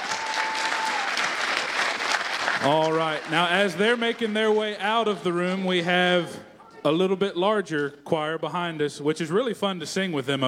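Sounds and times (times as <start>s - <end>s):
audience applauding in a large room: 0.0s - 5.4s
speech: 2.6s - 10.4s.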